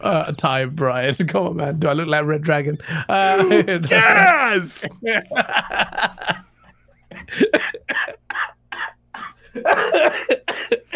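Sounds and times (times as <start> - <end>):
speech: 0.0 - 6.4
harsh heavy coughing: 3.2 - 4.8, 7.2 - 10.9
laughter: 3.2 - 10.9.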